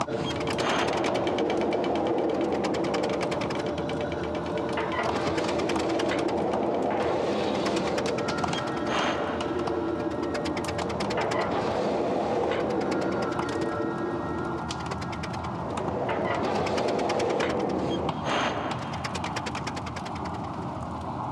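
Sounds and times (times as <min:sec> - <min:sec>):
foundry noise: 0:00.0 - 0:20.9.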